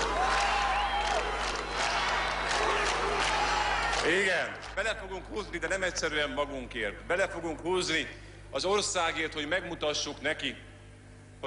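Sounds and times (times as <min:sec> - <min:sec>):
whoops from the crowd: 0:00.0 - 0:04.0
large crowd cheering and shouting encouragement: 0:00.0 - 0:04.2
speech: 0:04.0 - 0:10.7.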